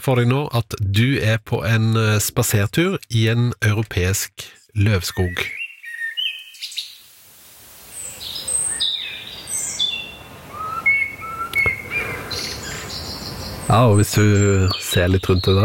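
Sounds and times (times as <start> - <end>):
speech: 0.0 - 5.6, 13.7 - 15.6
soft steady woodland ambience: 0.0 - 15.6
several birds chirping and whistling in a deciduous forest: 5.1 - 7.0, 8.0 - 15.6.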